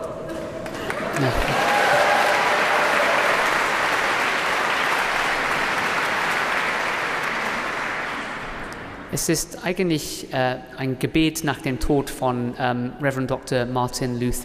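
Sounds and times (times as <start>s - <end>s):
large audience applauding at a concert: 0.6s - 9.0s
speech: 1.2s - 1.6s, 9.1s - 14.4s.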